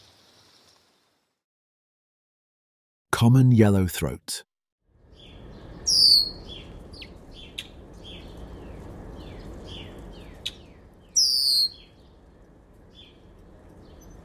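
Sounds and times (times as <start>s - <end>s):
speech: 3.2s - 4.5s
Red-winged Blackbird giving high thin downslurred whistles: 5.8s - 7.7s, 11.2s - 11.9s.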